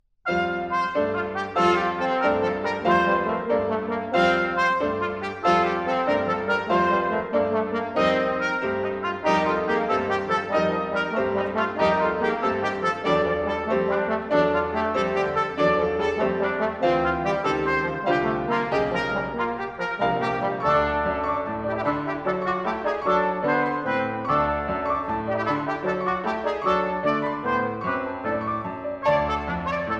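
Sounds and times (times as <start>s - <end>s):
piano: 0.2s - 29.9s
trumpet: 0.2s - 29.9s
trombone: 0.3s - 29.9s.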